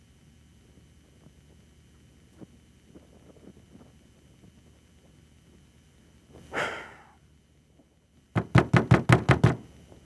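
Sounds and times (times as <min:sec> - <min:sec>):
breathy exhale: 0:06.5 - 0:07.2
firm knocks on a door: 0:08.4 - 0:09.6.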